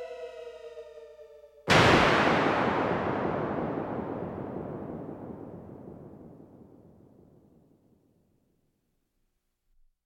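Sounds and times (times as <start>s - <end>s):
sci-fi photon shot: 1.7s - 7.4s.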